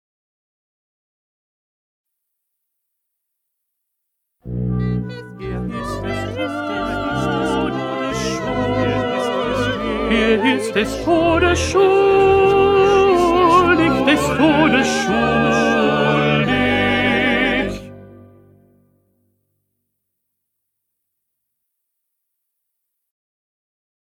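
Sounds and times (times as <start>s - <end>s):
second tenor voice singing: 4.7s - 18.0s.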